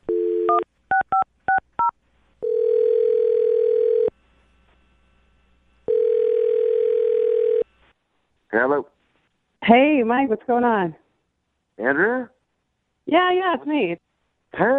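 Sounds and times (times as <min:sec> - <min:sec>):
long steady telephone tones: 0:00.0 - 0:04.2, 0:05.8 - 0:07.7
speech: 0:09.7 - 0:11.0, 0:11.8 - 0:12.4, 0:13.1 - 0:14.0, 0:14.6 - 0:14.7.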